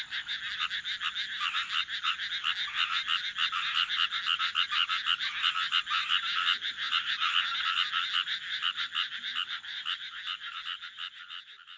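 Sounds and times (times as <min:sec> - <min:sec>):
frogs croaking in a dense chorus: 0:00.0 - 0:11.7.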